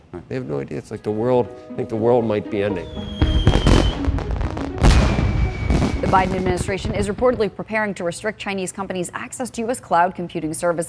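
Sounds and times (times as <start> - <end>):
speech: 0.1 - 3.7, 6.1 - 10.8
fireworks exploding: 3.1 - 7.5.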